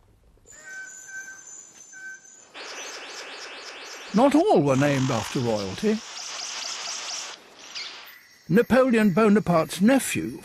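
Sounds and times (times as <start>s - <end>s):
Princess Stephanie's bird of paradise whistled call: 0.5s - 4.1s
Princess Stephanie's bird of paradise harsh rapid high chirps: 0.5s - 9.4s
speech: 4.2s - 6.1s, 8.5s - 10.4s.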